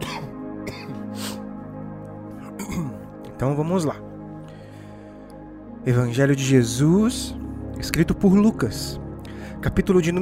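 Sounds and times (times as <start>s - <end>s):
person clearing throat: 0.0s - 1.4s, 2.4s - 3.1s
person coughing: 0.0s - 1.5s, 2.4s - 3.1s
speech: 3.4s - 4.1s, 5.8s - 9.0s, 9.6s - 10.2s.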